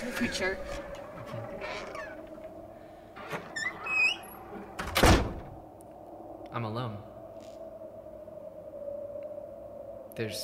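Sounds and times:
speech: 0.0s - 1.9s, 6.6s - 7.1s, 10.2s - 10.4s
door creaking open: 0.0s - 5.6s
door landing with a loud thud: 4.8s - 5.6s.

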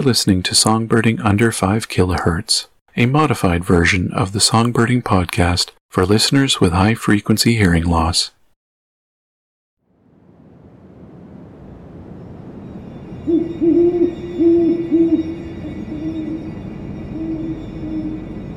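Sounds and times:
speech: 0.0s - 8.4s
wind-like rumble: 9.9s - 18.5s
great horned owl hooting: 13.2s - 18.5s.

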